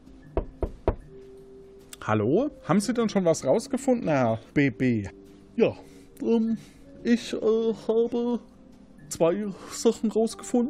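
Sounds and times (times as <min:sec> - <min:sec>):
knocking on the door of a forensics department: 0:00.3 - 0:01.1
speech: 0:02.0 - 0:08.5, 0:09.1 - 0:10.6.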